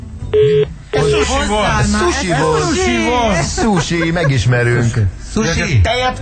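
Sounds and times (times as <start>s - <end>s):
electronic telephone keypad tone beep: 0.4s - 1.2s
laughter: 0.5s - 5.7s
speech: 0.5s - 6.2s.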